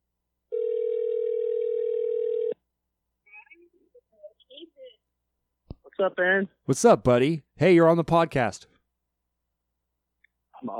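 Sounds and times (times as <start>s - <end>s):
phone ringback tone: 0.5s - 2.6s
speech: 6.0s - 8.7s.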